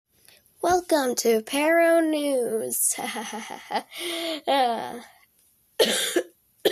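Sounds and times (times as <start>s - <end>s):
speech: 0.6s - 5.2s
person coughing roughly: 5.8s - 6.7s.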